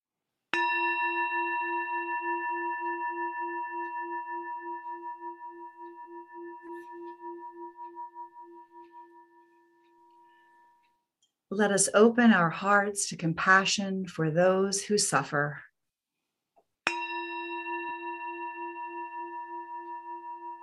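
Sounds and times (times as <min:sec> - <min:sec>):
meditation chime ringing with a shimmering tone: 0:00.6 - 0:11.1, 0:16.9 - 0:20.6
speech: 0:11.5 - 0:15.7.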